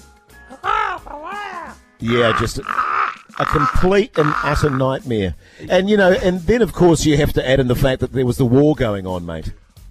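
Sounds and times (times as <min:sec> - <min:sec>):
bird cawing raspily: 0:00.5 - 0:05.0
speech: 0:02.0 - 0:02.8, 0:03.4 - 0:09.6.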